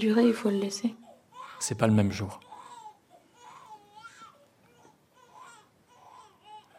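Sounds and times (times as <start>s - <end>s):
speech: 0.0s - 1.0s, 1.6s - 2.5s
faint noise: 0.0s - 6.7s
baby crying: 1.0s - 1.7s, 2.4s - 6.7s.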